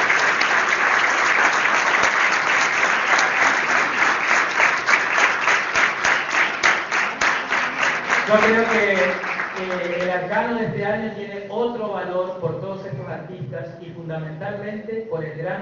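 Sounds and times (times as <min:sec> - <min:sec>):
audience applause: 0:00.0 - 0:10.3
speech: 0:08.4 - 0:15.6.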